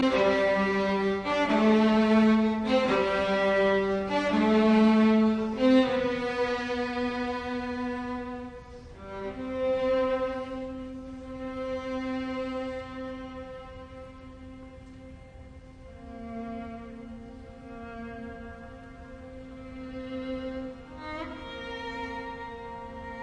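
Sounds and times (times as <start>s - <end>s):
string quartet playing chaconne in C major: 0.0s - 23.2s.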